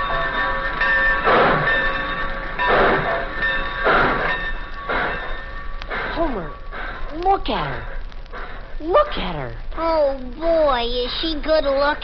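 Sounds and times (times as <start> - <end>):
steady ringing mechanical tone at a railroad station: 0.0 - 6.8
train hissing chuffs at a railroad station: 1.1 - 7.1, 7.7 - 8.8
speech: 7.4 - 8.0, 8.8 - 12.0.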